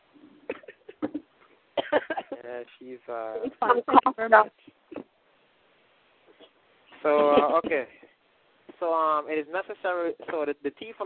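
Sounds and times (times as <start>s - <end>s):
woman with a cold coughing: 0.5s - 2.4s, 6.4s - 7.8s
speech: 1.9s - 4.8s, 7.0s - 8.0s, 8.8s - 11.0s.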